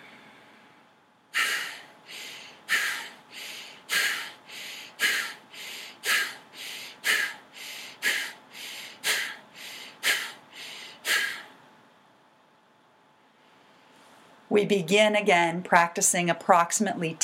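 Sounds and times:
forceful Bhastrika yogic breathing with sharp exhales and softer inhales: 1.3s - 11.6s
speech: 14.6s - 17.2s.

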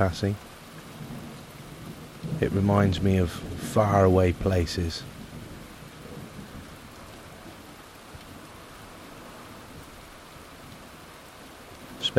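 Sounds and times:
speech: 0.0s - 0.5s, 2.4s - 5.1s
steady rain pouring down: 0.0s - 12.1s
low rolling rumble of thunder: 0.9s - 8.6s.

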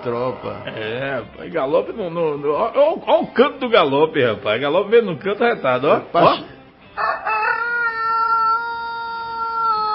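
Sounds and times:
speech: 0.0s - 6.5s
rooster crowing cock-a-doodle-doo: 7.0s - 9.9s.

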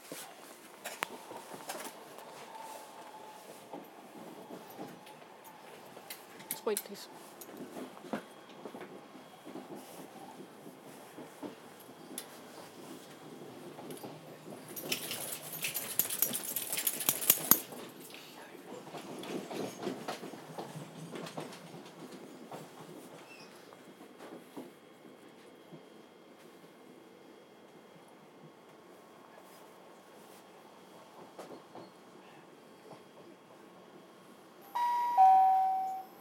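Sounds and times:
train rumbling and rattling into a terminus station: 0.0s - 35.8s
speech: 6.6s - 7.9s
bright electronic chime: 34.8s - 36.2s.

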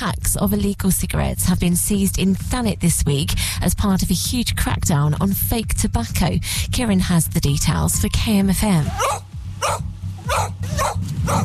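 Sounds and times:
low hum: 0.0s - 11.4s
speech: 0.0s - 11.4s
sniffer dogs barking while searching stores for counterfeit cigarettes: 8.9s - 11.4s.

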